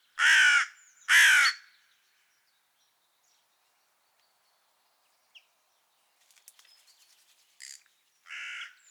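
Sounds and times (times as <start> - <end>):
carrion crow (Corvus corone) cawing: 0.2 - 1.7, 7.6 - 8.8
faint clicks: 6.2 - 6.8.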